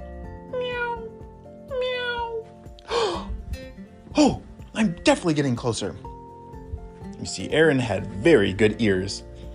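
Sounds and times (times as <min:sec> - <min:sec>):
cat meowing: 0:00.4 - 0:02.5
speech: 0:04.2 - 0:06.1, 0:07.2 - 0:09.3.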